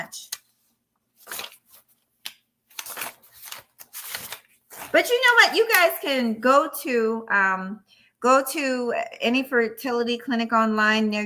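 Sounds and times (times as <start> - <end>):
papers rustling and shuffling while someone leafs through a stack: 0.0 - 6.3
speech: 4.9 - 11.2.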